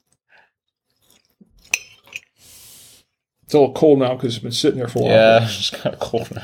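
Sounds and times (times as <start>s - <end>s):
person chewing a piece of slightly cold steak kebab: 0.0s - 1.6s
speech: 3.5s - 6.4s.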